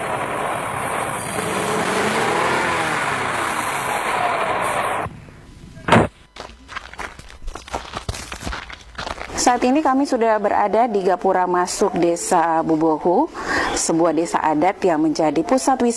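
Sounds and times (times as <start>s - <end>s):
car engine slowing down while driving: 0.0s - 5.8s
speech: 9.5s - 15.9s.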